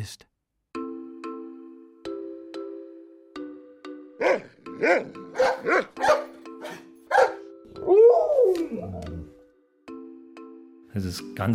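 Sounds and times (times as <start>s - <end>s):
speech: 0.0s - 0.3s, 4.2s - 6.8s, 11.0s - 11.5s
dog barking: 4.2s - 7.5s
dog whining howl: 4.2s - 9.3s.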